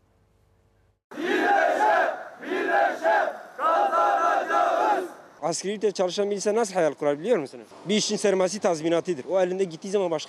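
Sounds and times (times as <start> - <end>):
crowd of trade union members in Turkey chanting slogans over severance pay: 1.1 - 5.4
speech: 5.5 - 10.2.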